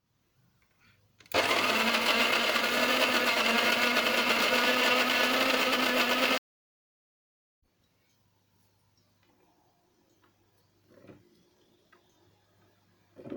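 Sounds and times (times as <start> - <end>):
coffee grinder grinding beans: 1.3 - 6.4.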